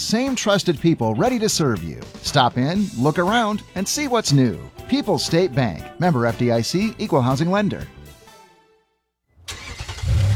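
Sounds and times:
speech: 0:00.1 - 0:08.0
car engine starting: 0:09.4 - 0:10.3.

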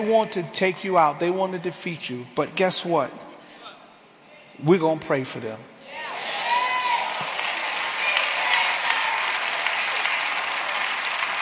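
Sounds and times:
speech: 0:00.0 - 0:03.3, 0:04.6 - 0:05.7
large crowd applauding: 0:06.4 - 0:11.4.

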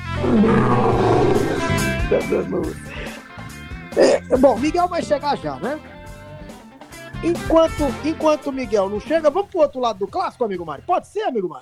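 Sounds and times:
lion roaring: 0:00.0 - 0:03.0
brassy musical swell: 0:00.2 - 0:04.0
speech: 0:02.1 - 0:03.0, 0:04.3 - 0:05.9, 0:07.2 - 0:11.6.

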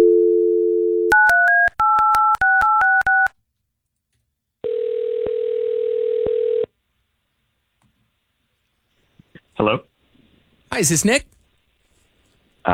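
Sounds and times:
telephone dial tone: 0:00.0 - 0:03.3, 0:04.6 - 0:06.7
speech: 0:10.8 - 0:11.3.

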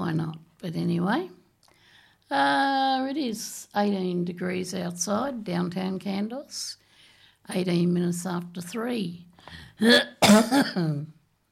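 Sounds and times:
speech: 0:00.2 - 0:01.4, 0:02.3 - 0:06.8, 0:07.5 - 0:11.2
harsh throat-clearing coughs from a person with a lingering cough: 0:09.8 - 0:11.1.

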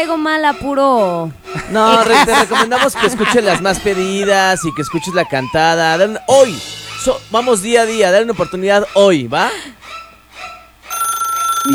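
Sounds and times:
speech: 0:00.0 - 0:10.0
laughter: 0:01.4 - 0:09.8
telephone ringing with electronic ring bursts and warbling tone: 0:10.9 - 0:11.7.

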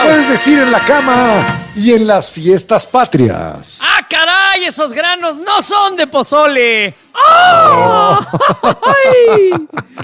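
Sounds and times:
speech: 0:00.4 - 0:10.0
person attempting a mariachi grito yell: 0:07.2 - 0:08.2
laughter: 0:07.6 - 0:10.0.

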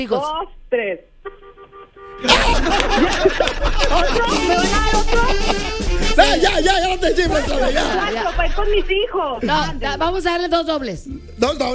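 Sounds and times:
speech: 0:00.0 - 0:01.1, 0:02.2 - 0:11.7
car horn honking: 0:01.2 - 0:09.3
burst of laughter: 0:02.2 - 0:09.7
loud noisy chatter: 0:02.3 - 0:10.1.

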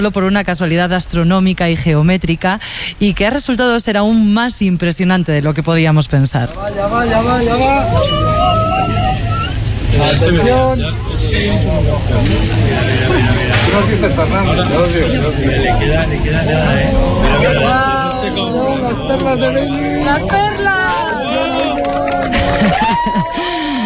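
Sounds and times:
speech: 0:00.0 - 0:21.8, 0:22.4 - 0:23.8
large crowd cheering and shouting excitedly at eclipse totality: 0:06.6 - 0:10.6, 0:16.5 - 0:23.8
laughter: 0:06.7 - 0:23.8
crowd clapping at eclipse totality: 0:17.7 - 0:23.8.

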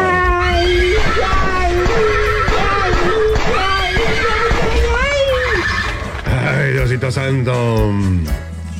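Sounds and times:
steady rumble: 0:00.0 - 0:07.5
horse neighing: 0:00.5 - 0:06.5
speech: 0:07.3 - 0:08.4.

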